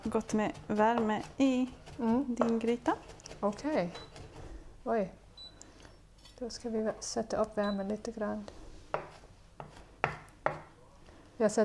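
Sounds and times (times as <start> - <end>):
speech: 0.0 - 4.2, 4.8 - 5.2, 6.4 - 9.1, 11.4 - 11.6
knife chopping vegetables on a board while preparing a stew: 0.0 - 4.4, 8.9 - 10.8.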